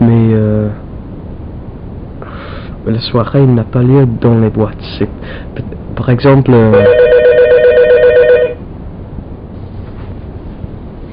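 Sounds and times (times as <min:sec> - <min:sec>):
quiet hiss: 0:00.0 - 0:06.5
speech: 0:02.9 - 0:07.3
telephone ringing with fast trilling warble: 0:06.7 - 0:08.6.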